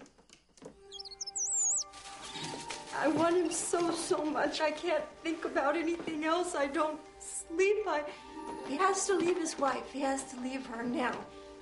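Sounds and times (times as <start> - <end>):
bird chirping: 0.8 - 2.7
speech: 3.0 - 11.4.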